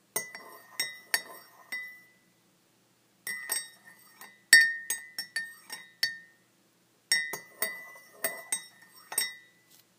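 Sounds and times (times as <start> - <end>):
stirring tea with a spoon: 0.2 - 2.2, 3.2 - 6.4, 7.1 - 9.6.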